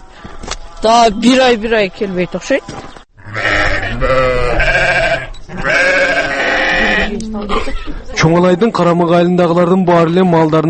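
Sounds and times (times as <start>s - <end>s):
speech: 0.8s - 2.8s, 4.0s - 4.4s, 7.4s - 10.6s
sheep bleating while driven across snow to pasture: 3.2s - 8.0s.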